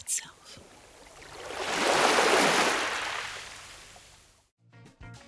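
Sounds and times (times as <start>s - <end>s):
ocean wave crashing on shore: 1.3s - 4.0s.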